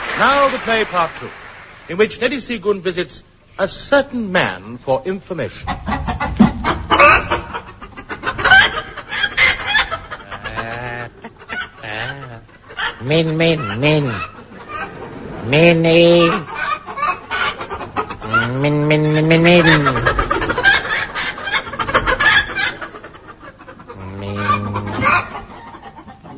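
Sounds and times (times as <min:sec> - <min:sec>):
speech: 0:00.2 - 0:06.3, 0:13.1 - 0:14.3, 0:15.5 - 0:16.6, 0:18.5 - 0:20.2
laughter: 0:05.5 - 0:26.3
person imitating chicken clucks and bawks: 0:11.8 - 0:13.1, 0:18.3 - 0:19.3, 0:23.9 - 0:25.3.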